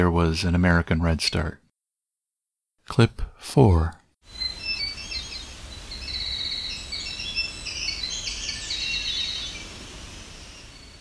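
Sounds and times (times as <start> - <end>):
speech: 0.0 - 1.6, 2.9 - 4.4
Hermit Thrush fluted song phrases: 4.3 - 10.9.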